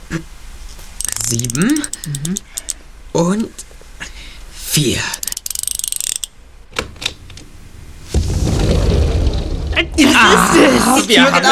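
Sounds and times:
speech: 0.1 - 0.4, 1.3 - 3.7, 4.8 - 5.2, 9.8 - 11.5
safe lock mechanism ratcheting clicks after code entry: 1.0 - 2.8, 5.1 - 6.4
sustained loud rumbling: 7.5 - 11.0.

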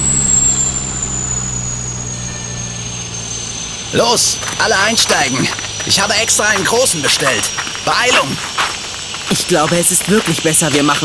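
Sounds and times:
helicopter descending and landing on skids: 0.0 - 11.0
speech: 3.9 - 11.0
sand and brush whipped up by helicopter rotors: 4.0 - 11.0.

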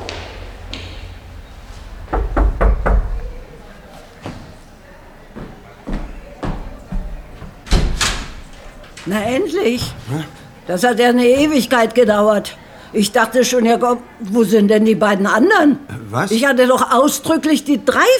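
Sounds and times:
knuckles knocking on a wooden door: 2.1 - 3.4
speech: 9.1 - 18.1.

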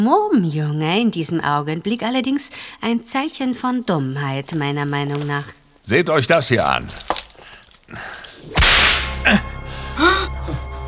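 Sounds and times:
speech: 0.0 - 7.2
whip crack: 8.5 - 9.4.

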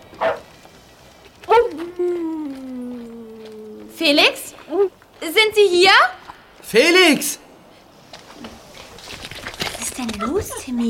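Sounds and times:
dog barking loudly: 0.2 - 0.5
dog whining: 1.5 - 4.0
speech: 4.0 - 7.4, 10.0 - 10.8.

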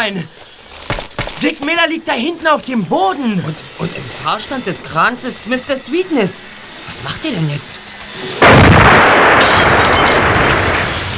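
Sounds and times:
speech: 0.0 - 0.5, 1.4 - 9.7
bomb exploding on a Mustang car: 8.4 - 11.1.

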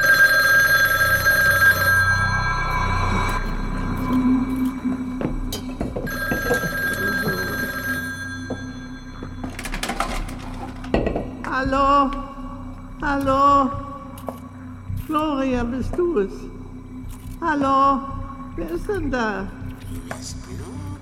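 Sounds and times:
telephone ringing with electronic tone: 0.0 - 4.1, 6.0 - 10.8
low hum: 0.1 - 20.9
clattering noises: 4.0 - 7.7, 8.5 - 12.2
speech: 13.1 - 13.8, 15.1 - 16.5, 17.4 - 20.0.

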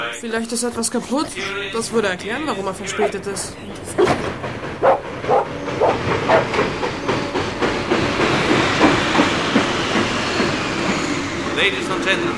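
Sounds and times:
speech: 0.1 - 4.3, 11.7 - 12.3
delayed train wheels clanking and knocking: 0.5 - 12.3
dog-like yelps: 4.0 - 4.2, 4.8 - 6.5.

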